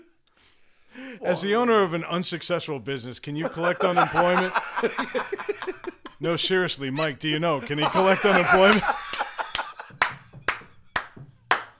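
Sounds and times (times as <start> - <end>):
speech: 1.2 - 9.1
laughter: 3.2 - 11.3
hand claps: 7.7 - 11.7.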